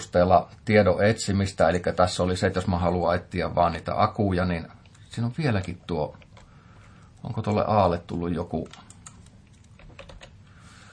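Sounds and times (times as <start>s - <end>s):
speech: 0.0s - 6.2s, 7.2s - 8.9s
low hum: 0.0s - 10.9s
typing on a computer keyboard into a search field: 8.6s - 10.4s.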